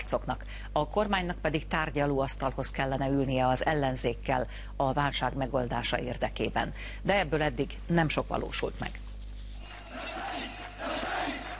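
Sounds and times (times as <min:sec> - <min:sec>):
speech: 0:00.1 - 0:09.1
large crowd chanting and shouting, cheering the rebel army near Homs, Syria: 0:09.6 - 0:11.5.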